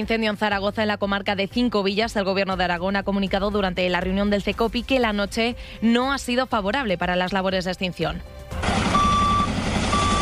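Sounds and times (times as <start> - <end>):
speech: 0.0 - 8.6
constant loud rumble of firefighting truck engine: 8.6 - 10.2
reversing beeps from a firefighting truck working a wildfire: 8.6 - 10.2.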